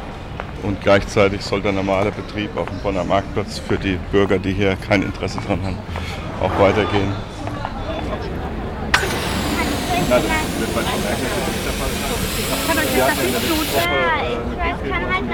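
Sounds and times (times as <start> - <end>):
speech: 0.6 - 7.3, 10.1 - 11.6, 13.0 - 15.3
murmur of crowd chatter on a market square: 6.8 - 15.3
balloon pump hissing: 9.0 - 13.9.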